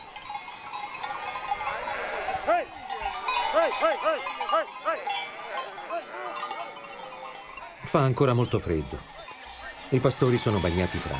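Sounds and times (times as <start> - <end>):
busy outdoor noise: 0.0 - 11.1
sheep bells clanking and jingling: 0.0 - 11.1
flock of sheep driven by shepherds across the mountains bleating: 1.6 - 2.8, 3.4 - 7.7
speech: 3.6 - 6.5, 7.9 - 9.2, 9.9 - 11.1.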